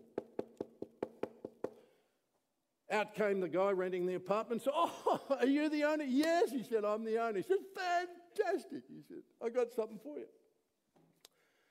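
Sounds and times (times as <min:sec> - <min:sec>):
knocking on an apartment door by its owner collecting rent: 0:00.0 - 0:01.8
speech: 0:02.9 - 0:10.4.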